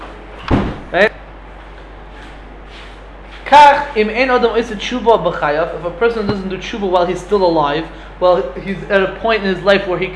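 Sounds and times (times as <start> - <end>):
door swung shut with a slam: 0.4 - 1.0, 6.2 - 6.7
speech: 0.9 - 1.2, 3.5 - 10.1.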